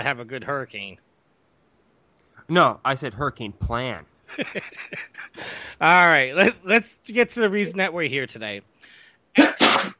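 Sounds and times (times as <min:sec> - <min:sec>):
speech: 0:00.0 - 0:01.1, 0:02.5 - 0:09.6
laughter: 0:04.3 - 0:08.5
short voiced intake of breath: 0:05.4 - 0:05.8
loud sneeze with a forceful noisy burst: 0:09.4 - 0:09.9.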